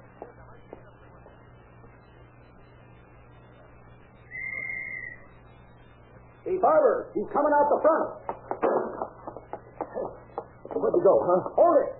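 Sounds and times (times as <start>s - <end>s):
low constant hum: 0.0s - 11.9s
shrill whistle blast blown as a signal: 4.3s - 5.4s
speech: 6.5s - 8.2s, 10.9s - 11.9s.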